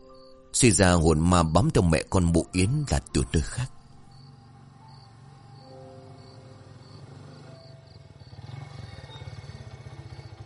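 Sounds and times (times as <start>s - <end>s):
insects chirping: 0.0s - 10.4s
speech: 0.6s - 3.8s
motorcycle engine rumble as it arrives: 3.7s - 10.4s.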